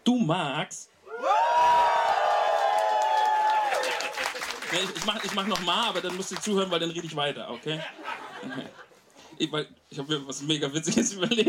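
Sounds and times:
speech: 0.1 - 1.8, 4.7 - 11.4
live audience cheering and whooping: 1.1 - 6.6
laughter: 7.5 - 9.0.

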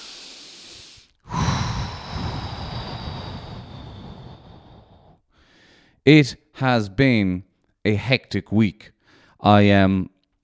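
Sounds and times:
deep breath: 0.0 - 6.0, 9.0 - 9.4
speech: 6.1 - 10.1.

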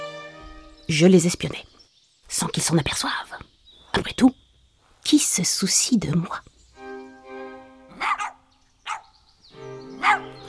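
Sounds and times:
speech: 0.9 - 1.7, 2.3 - 4.4, 5.0 - 6.5
small dogs barking while chasing someone: 7.9 - 9.2, 9.9 - 10.4.

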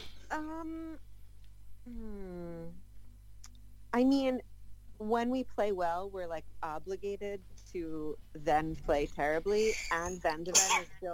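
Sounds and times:
speech: 0.3 - 1.1, 1.8 - 2.8, 3.9 - 11.1
sneeze: 10.5 - 10.9.

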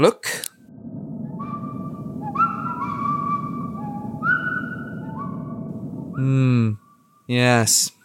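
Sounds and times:
speech: 0.0 - 0.5, 6.2 - 8.0
low steady rumble: 0.6 - 7.2
loud buzzy tone: 0.7 - 7.1
person whistling a short lilting tune: 1.4 - 6.8.

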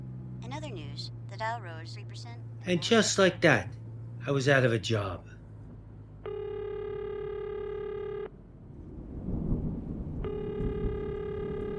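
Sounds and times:
speech: 0.4 - 5.3
telephone line ringing tone while waiting for answer: 6.2 - 8.3, 10.2 - 11.7.

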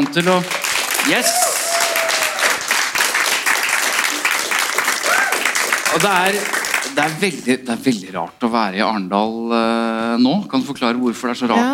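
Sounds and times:
speech: 0.0 - 1.5, 5.9 - 11.7
live audience applause: 0.0 - 7.7
audience cheers and whistles: 1.1 - 2.7, 5.0 - 5.6.

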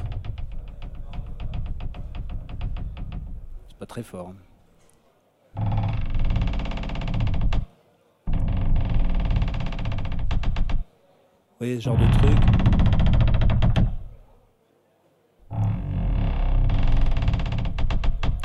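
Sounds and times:
slowed-down bed creaks as boat cabin creaking: 0.0 - 3.8, 5.6 - 7.7, 8.3 - 10.9, 11.9 - 14.2, 15.5 - 18.4
speech: 3.8 - 4.5, 11.6 - 12.6.

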